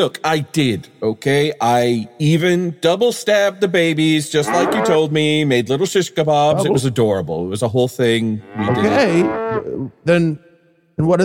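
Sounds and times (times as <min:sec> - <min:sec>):
speech: 0:00.0 - 0:11.2
cow mooing loudly in a drawn-out low call: 0:04.4 - 0:05.1, 0:08.4 - 0:09.9.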